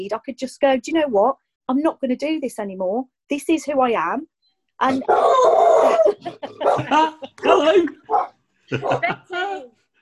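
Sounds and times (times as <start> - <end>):
speech: 0.0 - 9.8
laughter: 5.7 - 7.9, 8.7 - 9.6
dog barking in howl-like bursts and yelps: 6.5 - 6.9, 7.5 - 9.0.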